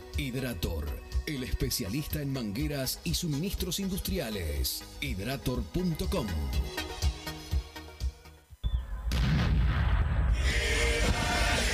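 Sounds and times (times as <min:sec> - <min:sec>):
speech: 0:00.2 - 0:07.0
fireworks bangs and crackling explosions: 0:08.6 - 0:11.6.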